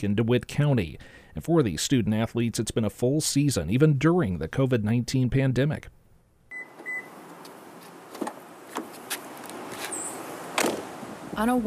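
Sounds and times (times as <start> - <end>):
speech: 0.0 - 6.0, 11.4 - 11.6
electronic car lock beeps: 6.5 - 7.2
car doors thudding shut: 10.5 - 11.0.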